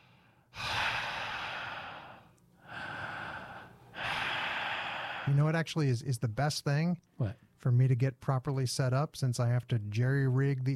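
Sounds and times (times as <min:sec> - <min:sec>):
slow deep breaths in a breathing exercise: 0:00.0 - 0:05.5
speech: 0:05.3 - 0:10.7.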